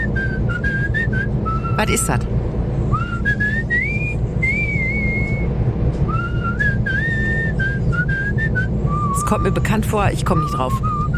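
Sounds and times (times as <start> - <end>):
person whistling a cheerful bouncy tune: 0.0 - 2.1, 2.9 - 5.5, 6.1 - 9.7, 10.7 - 11.1
steady low rumble: 0.0 - 11.1
speech: 1.8 - 2.4, 9.3 - 10.9.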